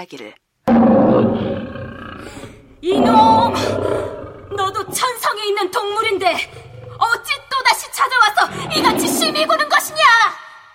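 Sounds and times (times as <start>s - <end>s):
speech: 0.0s - 7.4s, 8.0s - 10.4s
tiger roaring loudly: 0.7s - 7.6s, 8.4s - 9.9s.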